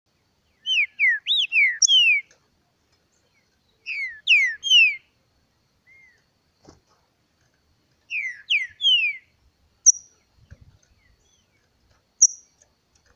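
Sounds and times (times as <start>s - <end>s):
green-winged saltator singing downward-sliding whistles: 0.6s - 2.3s, 3.8s - 5.1s, 5.8s - 6.2s, 8.1s - 10.2s.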